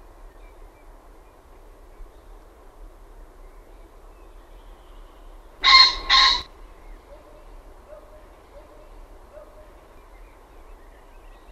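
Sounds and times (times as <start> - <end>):
common pheasant crowing: 5.6 - 9.7.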